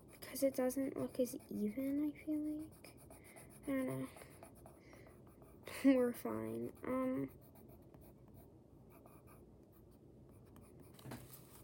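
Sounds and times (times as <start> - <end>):
pencil scratching on paper in coloring strokes: 0.0 - 11.1
speech: 0.3 - 2.9, 3.6 - 4.3, 5.8 - 7.4.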